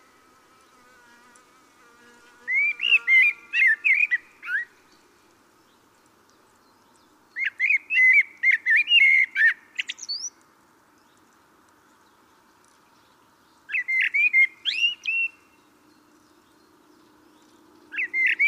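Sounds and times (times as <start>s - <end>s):
common blackbird Turdus merula singing: 2.5s - 4.8s, 6.6s - 10.3s, 13.7s - 18.4s.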